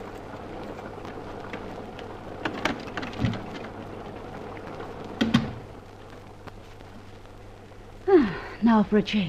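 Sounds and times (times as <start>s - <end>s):
rain falling: 0.0s - 9.2s.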